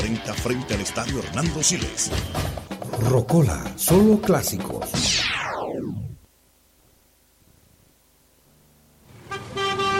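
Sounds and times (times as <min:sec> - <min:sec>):
speech: 0:00.2 - 0:05.2
car horns honking in a traffic jam on city streets: 0:09.1 - 0:09.9.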